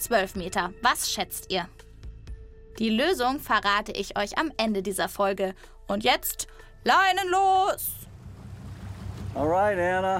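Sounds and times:
speech: 0.0s - 1.8s, 2.8s - 8.0s, 9.3s - 10.1s
boat engine rumbling while setting off from harbour: 7.9s - 10.1s.

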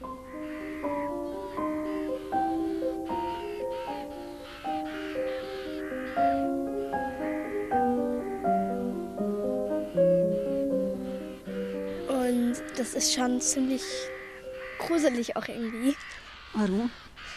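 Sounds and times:
large flock of ravens cawing: 0.0s - 17.3s
speech: 12.8s - 14.1s, 14.9s - 17.0s.

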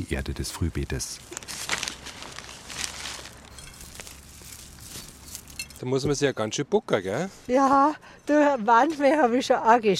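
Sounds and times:
speech: 0.0s - 1.7s, 5.8s - 9.9s
plastic bag of horn shavings crinkling and rustling: 1.1s - 5.8s.

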